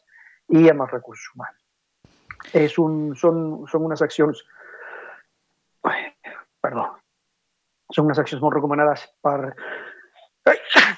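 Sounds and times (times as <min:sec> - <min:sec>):
speech: 0:00.5 - 0:01.6, 0:02.4 - 0:04.6, 0:07.9 - 0:10.9
person sneezing: 0:10.5 - 0:10.9.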